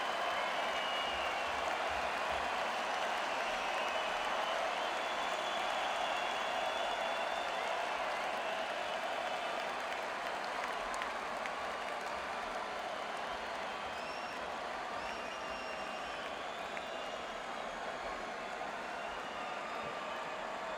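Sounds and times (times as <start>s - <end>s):
crowd in an arena: 0.0s - 20.7s.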